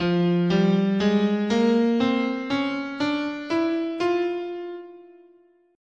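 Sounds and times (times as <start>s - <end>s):
F bebop melodic minor scale: 0.0s - 5.6s.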